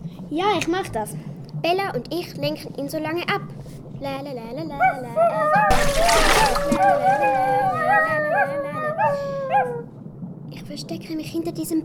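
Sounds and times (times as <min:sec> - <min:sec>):
speech: 0:00.3 - 0:11.8
wavering dog-like howls and yips: 0:04.8 - 0:05.8, 0:06.7 - 0:09.9
splash of person jumping into a river: 0:05.7 - 0:06.9.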